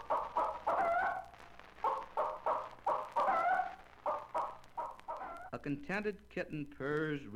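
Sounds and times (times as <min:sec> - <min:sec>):
frightened hen clucking and squawking in alarm: 0:00.0 - 0:05.5
speech: 0:05.5 - 0:07.3.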